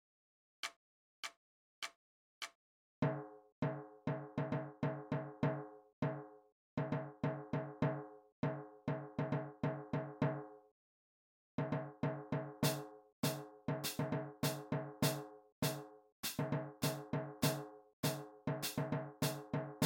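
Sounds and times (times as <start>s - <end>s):
drums: 3.0s - 10.5s, 11.6s - 19.8s.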